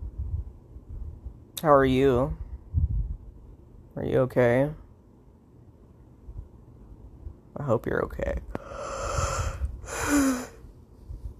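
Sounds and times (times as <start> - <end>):
speech: 1.6 - 2.4, 4.0 - 4.8, 7.6 - 8.6
person yawning: 8.6 - 10.6.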